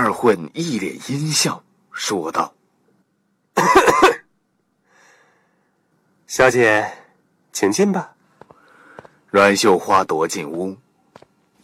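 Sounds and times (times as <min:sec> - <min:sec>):
speech: 0:00.2 - 0:02.6, 0:06.3 - 0:07.0, 0:07.6 - 0:08.2, 0:09.3 - 0:10.8
person coughing: 0:03.6 - 0:04.3.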